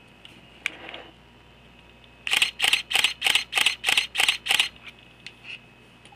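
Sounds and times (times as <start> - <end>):
Canon EOS Kiss X4 camera shutter: 2.3 - 4.8.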